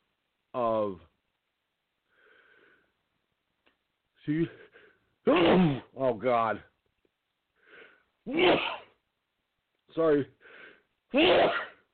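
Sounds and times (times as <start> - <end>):
speech: 0.5 - 1.1, 4.2 - 6.7, 8.2 - 8.8, 9.9 - 10.4, 11.1 - 11.7
loud sneeze: 5.2 - 6.0, 8.3 - 9.0, 11.1 - 11.9.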